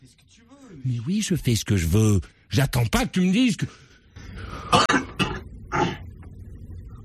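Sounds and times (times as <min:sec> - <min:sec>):
speech: 0:00.1 - 0:03.8
harsh coughs: 0:04.6 - 0:06.1.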